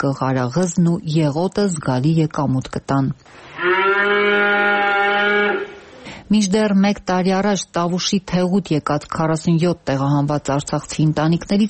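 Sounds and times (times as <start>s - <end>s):
speech: 0.0s - 3.6s, 6.3s - 11.6s
cow mooing on a village farm in Tavush: 3.5s - 6.0s.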